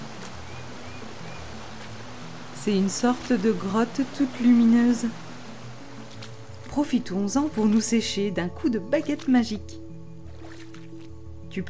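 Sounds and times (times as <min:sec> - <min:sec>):
waterfall rushing: 0:00.0 - 0:06.1
soft low humming tones: 0:00.0 - 0:11.6
speech: 0:02.6 - 0:05.2, 0:06.8 - 0:09.8.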